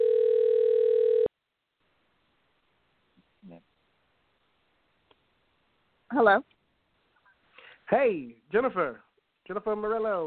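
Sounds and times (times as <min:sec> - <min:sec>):
telephone dial tone from a call being placed: 0:00.0 - 0:01.3
speech: 0:06.2 - 0:06.5, 0:07.9 - 0:10.2.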